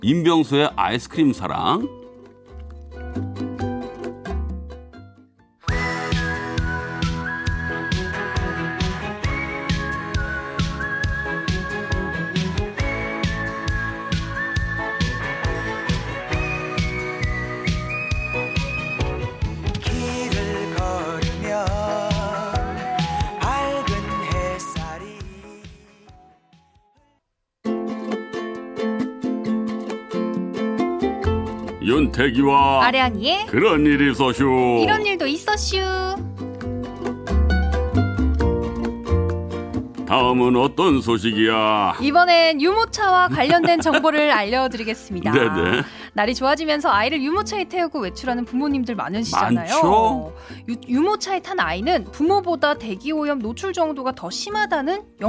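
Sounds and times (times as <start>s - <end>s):
speech: 0.0s - 2.0s, 32.2s - 36.2s, 40.2s - 55.2s
music: 0.0s - 55.2s
Korean pop song playing: 5.7s - 26.0s, 34.6s - 35.3s, 43.3s - 46.0s, 49.2s - 50.4s
laughter: 43.2s - 44.4s, 45.2s - 46.0s.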